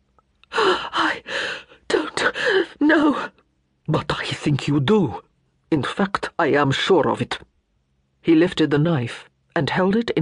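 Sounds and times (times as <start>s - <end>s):
person gasping for air: 0.5s - 2.8s
speech: 2.9s - 7.5s, 8.2s - 10.2s.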